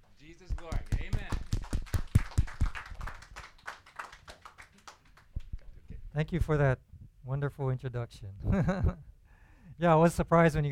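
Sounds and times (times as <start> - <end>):
speech: 0.3 - 1.3, 6.2 - 9.1, 9.8 - 10.7
crowd applauding: 0.6 - 5.4.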